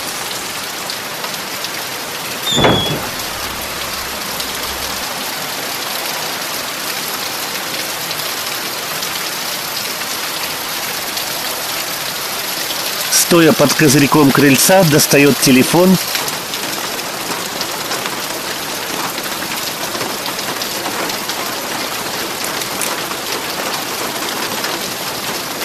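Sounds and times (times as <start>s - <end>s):
steady rain falling at night: 0.0s - 25.6s
brief sharp noise: 2.5s - 5.0s
speech: 13.3s - 16.3s.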